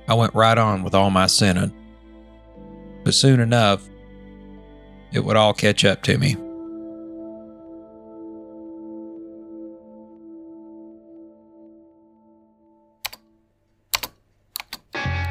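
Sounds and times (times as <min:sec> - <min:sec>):
soft sustained musical drone: 0:00.0 - 0:13.0
speech: 0:00.1 - 0:01.8, 0:03.0 - 0:03.9, 0:05.1 - 0:06.4
computer keyboard typing and clicking: 0:13.0 - 0:13.3, 0:13.9 - 0:15.2.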